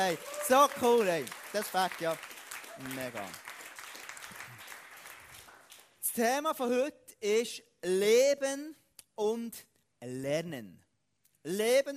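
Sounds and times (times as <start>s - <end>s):
speech: 0.0s - 3.5s, 6.2s - 10.8s, 11.4s - 11.9s
audience applause: 0.0s - 5.9s.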